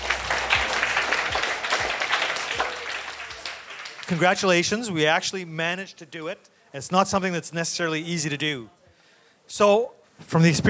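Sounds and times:
audience applauding: 0:00.0 - 0:04.7
speech: 0:04.1 - 0:08.8, 0:09.5 - 0:10.6.

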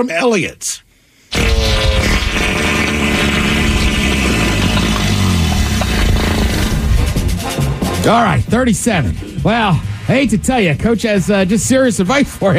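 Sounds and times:
speech: 0:00.0 - 0:00.9, 0:08.0 - 0:12.5
fart sound effect: 0:01.3 - 0:07.3.

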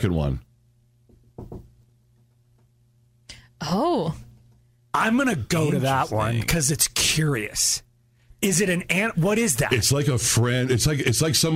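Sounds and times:
speech: 0:00.0 - 0:00.5, 0:03.6 - 0:04.3, 0:05.0 - 0:07.8, 0:08.4 - 0:11.5
low steady hum: 0:00.0 - 0:11.5
firm knocks on a door: 0:01.1 - 0:01.8.

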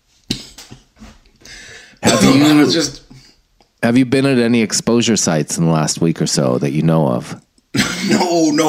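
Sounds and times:
person coughing harshly after a bong hit: 0:02.0 - 0:02.8, 0:07.7 - 0:08.4
speech: 0:02.3 - 0:03.0, 0:03.8 - 0:08.6.

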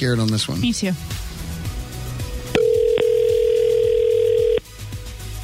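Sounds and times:
speech: 0:00.0 - 0:01.4
ringback tone of an outgoing phone call: 0:02.6 - 0:04.6.

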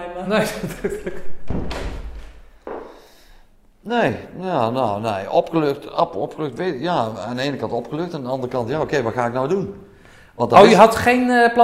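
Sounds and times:
speech: 0:00.2 - 0:01.7, 0:03.9 - 0:11.6
laughter: 0:00.3 - 0:01.4
door pushed shut with a solid thud: 0:01.4 - 0:02.9.

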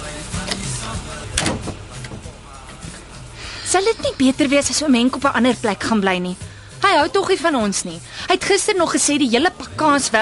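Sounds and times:
door being pushed shut: 0:01.3 - 0:02.3
speech: 0:03.7 - 0:10.2.

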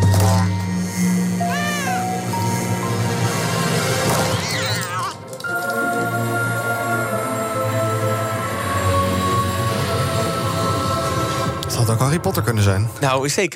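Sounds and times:
loud dramatic orchestral music bed in a product teaser trailer: 0:00.0 - 0:13.2
cat meowing: 0:01.4 - 0:02.3
speech: 0:11.9 - 0:13.5.

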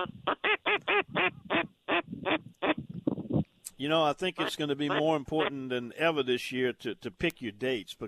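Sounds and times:
gadwall duck quacking during a duck hunt: 0:00.0 - 0:02.8, 0:04.3 - 0:05.6
speech: 0:03.8 - 0:08.0.

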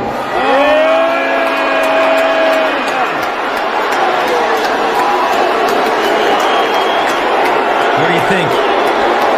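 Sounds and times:
large audience at a stage show booing and cheering: 0:00.0 - 0:09.3
whistles: 0:05.9 - 0:07.3.

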